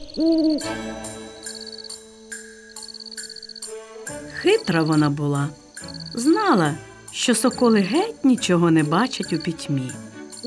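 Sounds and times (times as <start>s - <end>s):
owl hooting: 0.0s - 6.8s
speech: 0.2s - 1.2s, 4.4s - 5.6s, 6.2s - 10.1s
steady ticking: 0.4s - 10.4s
chiming tone: 0.6s - 10.4s.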